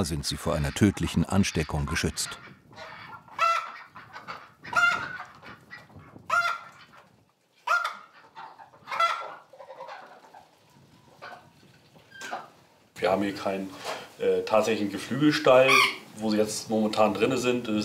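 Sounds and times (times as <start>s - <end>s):
speech: 0.0s - 2.9s, 13.0s - 17.8s
overlapping quacking and chatter of ducks: 0.0s - 11.5s
ducks and geese honking in a sheep barn: 0.0s - 12.6s, 15.6s - 16.1s.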